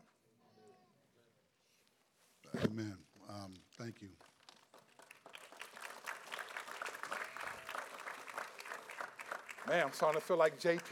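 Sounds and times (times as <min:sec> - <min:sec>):
speech: 0:02.7 - 0:04.3, 0:09.7 - 0:10.8
audience applause: 0:04.2 - 0:10.8.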